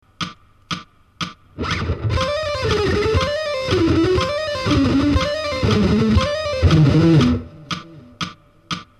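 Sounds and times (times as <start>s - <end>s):
guitar string skipping fast: 1.6s - 8.2s.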